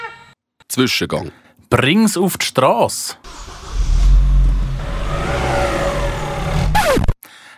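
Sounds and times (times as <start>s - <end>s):
speech: 0.8s - 3.5s
car engine revving: 3.3s - 7.1s.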